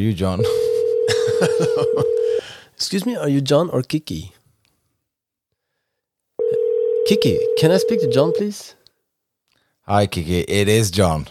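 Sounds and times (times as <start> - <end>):
speech: 0.0 - 0.7, 1.4 - 4.4, 7.1 - 8.8, 9.9 - 11.3
electronic ringback tone of an outgoing phone call: 0.4 - 2.4, 6.4 - 8.4
laughter: 0.5 - 2.4.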